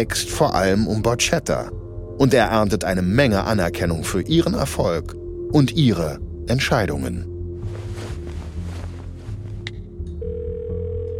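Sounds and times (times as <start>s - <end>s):
speech: 0.0s - 7.3s
electronic ringback tone of an outgoing phone call: 10.2s - 11.1s.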